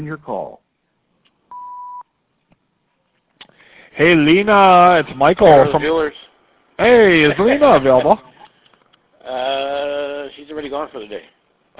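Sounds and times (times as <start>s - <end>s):
speech: 0.0s - 0.6s, 4.0s - 8.3s, 9.2s - 11.7s
answering machine beep: 1.5s - 2.0s.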